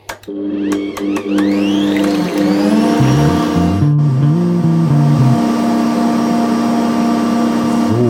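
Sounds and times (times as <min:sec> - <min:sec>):
speech: 0:00.2 - 0:01.6
stand mixer with whisk attachment beating eggs with salt until foamy: 0:00.3 - 0:04.1, 0:05.4 - 0:08.0.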